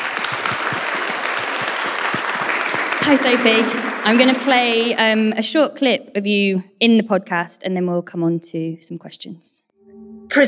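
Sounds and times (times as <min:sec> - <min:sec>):
crowd applauding: 0:00.0 - 0:05.2
speech: 0:03.1 - 0:09.7.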